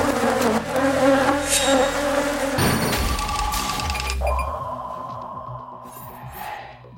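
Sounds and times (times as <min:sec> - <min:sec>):
swarm of honeybees buzzing: 0:00.0 - 0:03.8.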